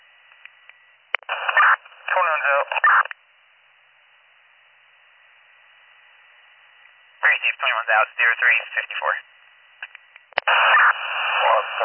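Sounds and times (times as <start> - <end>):
crackly band-limited radio static: 1.2 - 3.2, 7.2 - 11.8
garbled voice breaking through radio transmission: 1.3 - 3.1, 7.2 - 9.2, 10.5 - 11.8
speech: 7.4 - 9.3.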